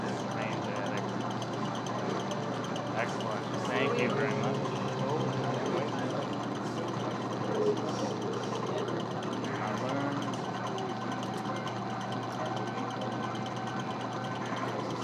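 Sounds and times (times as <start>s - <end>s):
overlapping chatter in a crowded seaside amusement arcade: 0.0s - 15.0s
steady arcade machine hum: 0.0s - 15.0s.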